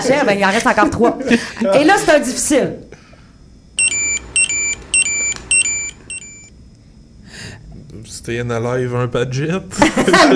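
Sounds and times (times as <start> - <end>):
speech: 0.0 - 3.0, 8.2 - 10.3
virtual pet toy electronic beeping: 3.8 - 6.5
laughter: 9.7 - 10.3.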